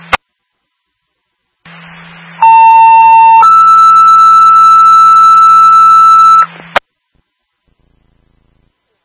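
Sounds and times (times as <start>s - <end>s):
hissing humming radio channel: 0.0s - 3.4s, 6.4s - 9.0s
radio dispatch alert tones: 2.4s - 6.6s.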